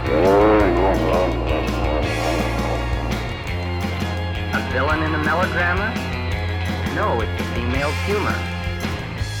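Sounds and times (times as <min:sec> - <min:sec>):
Indian elephant vocalizing: 0:00.0 - 0:05.7
steady low rumble: 0:00.0 - 0:09.3
speech: 0:05.4 - 0:06.1, 0:07.0 - 0:08.5.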